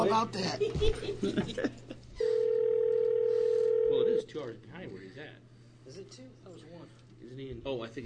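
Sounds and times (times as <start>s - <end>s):
speech: 0.1s - 2.0s, 4.2s - 8.0s
telephone dial tone as a phone call is placed: 2.2s - 4.2s.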